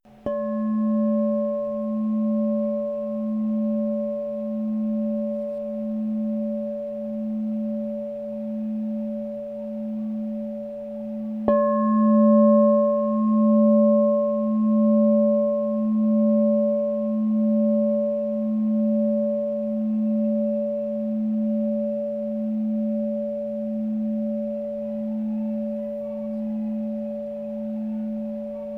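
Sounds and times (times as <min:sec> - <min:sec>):
9 inch 432Hz low A crystal bowl ringing: 0:00.2 - 0:28.7.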